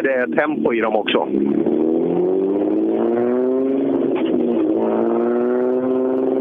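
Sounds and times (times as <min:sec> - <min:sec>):
speech: 0:00.0 - 0:02.3
six-cylinder BMW engine revving past: 0:01.3 - 0:06.3.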